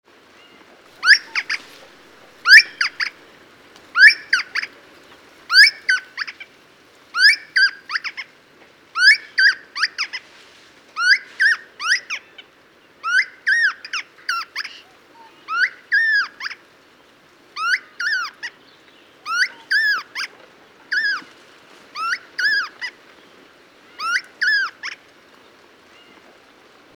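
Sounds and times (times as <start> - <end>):
Polihierax insignis falcon calling: 1.0 - 3.2, 3.9 - 4.8, 5.5 - 6.5, 7.1 - 8.3, 9.0 - 10.2, 11.0 - 12.4, 13.0 - 16.6, 17.6 - 18.6, 19.2 - 21.3, 21.9 - 23.0, 23.9 - 25.1.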